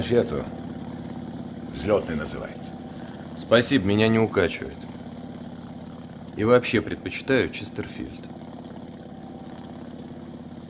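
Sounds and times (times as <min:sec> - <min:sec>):
speech: 0:00.0 - 0:00.6, 0:01.8 - 0:02.8, 0:03.4 - 0:04.9, 0:06.4 - 0:08.3
helicopter rotor and engine drone heard from inside the helicopter: 0:00.0 - 0:10.6.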